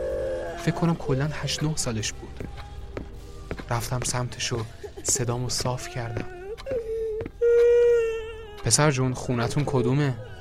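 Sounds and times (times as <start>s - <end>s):
speech: 0.6s - 2.7s, 3.7s - 6.4s, 8.7s - 10.4s
child crying softly: 5.6s - 10.4s.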